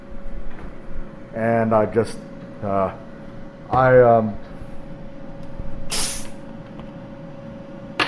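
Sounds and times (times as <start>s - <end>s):
steady hum: 0.0s - 8.0s
speech: 1.3s - 3.0s, 3.7s - 4.5s
fizz of homemade carbonated cola bottle being opened: 5.9s - 6.4s.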